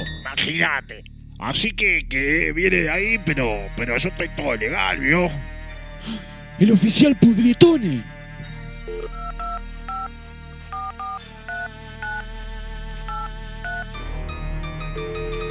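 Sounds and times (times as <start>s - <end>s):
steady musical background: 0.0s - 15.4s
speech: 0.4s - 8.1s, 8.8s - 9.2s
telephone ringing with bright electronic tones: 8.9s - 10.1s, 10.7s - 12.4s, 13.0s - 13.9s.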